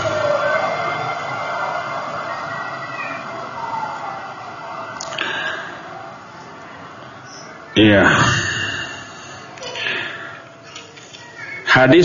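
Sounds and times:
ambulance siren wailing as it passes: 0.0s - 5.0s
constant broadband rumble of traffic: 0.0s - 11.7s
speech: 7.8s - 8.4s, 11.8s - 12.0s.

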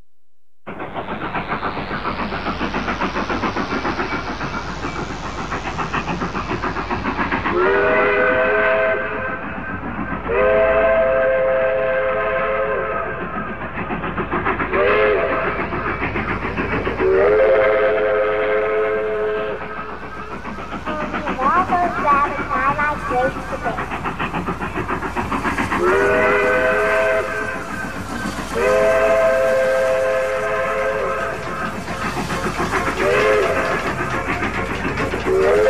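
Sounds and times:
train departing from a station rumbling: 0.6s - 35.6s
train whistle as a train departs from a station: 7.5s - 9.3s, 10.3s - 13.2s, 14.8s - 15.5s, 17.0s - 19.6s, 25.8s - 27.6s, 28.6s - 31.3s, 33.0s - 33.7s, 35.2s - 35.6s.

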